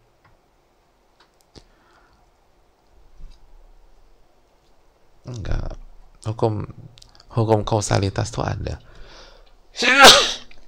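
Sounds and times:
speech: 5.3 - 8.9
person sneezing: 9.8 - 10.6.

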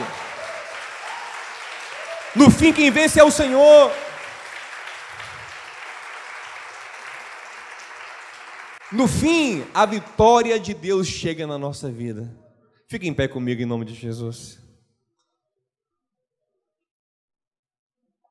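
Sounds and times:
congregation applauding: 0.0 - 10.8
speech: 2.3 - 4.0, 8.9 - 14.6.

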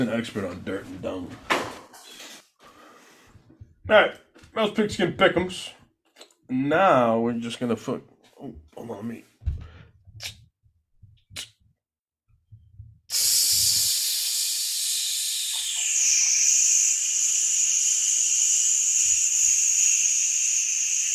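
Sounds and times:
speech: 0.0 - 1.5, 3.9 - 5.8, 6.5 - 9.3
soft low thumps: 9.4 - 10.2, 12.5 - 13.1
sizzling hiss sound effect: 13.1 - 21.1.

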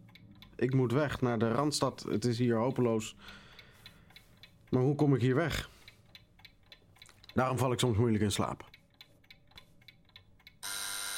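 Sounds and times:
clock ticking: 0.0 - 11.1
speech: 0.6 - 3.4, 4.7 - 5.7, 7.4 - 8.7
alarm clock ringing with loud metallic ringing: 10.6 - 11.1.

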